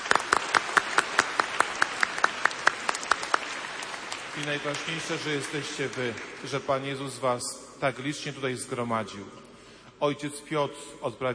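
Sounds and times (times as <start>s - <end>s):
audience applauding: 0.0s - 6.9s
speech: 4.4s - 9.4s, 10.0s - 11.3s.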